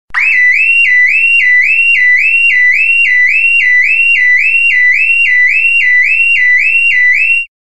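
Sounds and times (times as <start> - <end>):
car alarm: 0.2 - 7.7.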